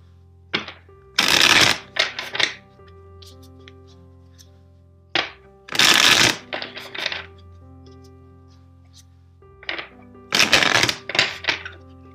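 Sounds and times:
deck of cards shuffling: 1.2s - 4.6s, 5.7s - 9.2s, 9.8s - 12.0s.

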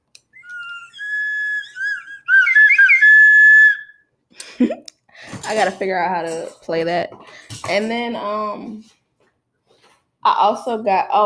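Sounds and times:
whistle being blown: 0.3s - 4.0s
speech: 4.6s - 4.8s, 5.5s - 9.0s, 10.2s - 11.2s.

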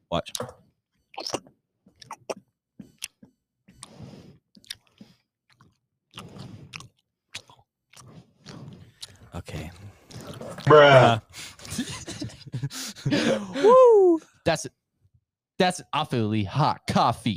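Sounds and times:
speech: 0.1s - 0.6s, 10.7s - 11.2s, 15.6s - 17.3s
chewing noises with crisp bites and crunches: 1.2s - 11.0s
laughter: 10.7s - 13.7s.

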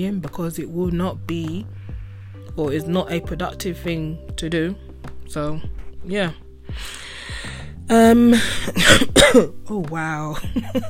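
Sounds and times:
speech: 0.0s - 1.8s, 2.5s - 7.0s, 7.9s - 10.8s
sharp loud coughs: 8.3s - 9.6s
person clearing throat with a voiced rasp: 8.7s - 9.6s.

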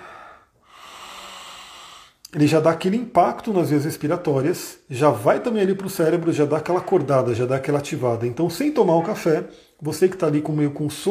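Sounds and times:
person inhaling deeply through the nose: 0.0s - 2.2s
speech: 2.3s - 11.0s.

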